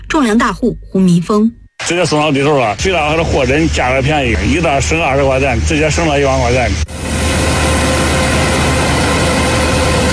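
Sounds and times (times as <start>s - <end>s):
speech: 0.2s - 7.2s
combine harvester working at full power harvesting maize in a field: 3.0s - 10.1s.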